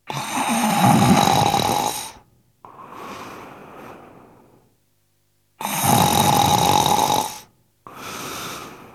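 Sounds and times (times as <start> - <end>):
man lying down snoring heavily: 0.1 - 2.2, 5.6 - 7.5.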